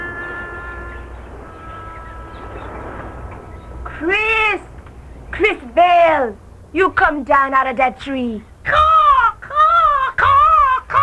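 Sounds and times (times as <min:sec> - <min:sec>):
speech: 0:04.0 - 0:04.7, 0:05.4 - 0:08.9
person in a tree imitating bird calls: 0:08.7 - 0:11.0.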